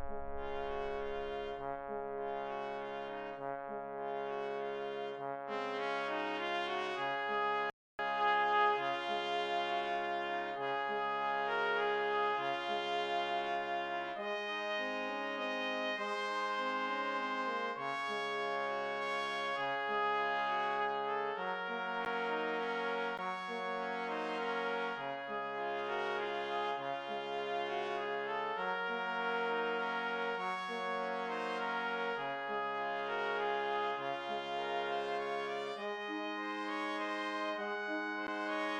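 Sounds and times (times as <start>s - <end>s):
brass quartet playing a Christmas carol: 0.1s - 38.7s.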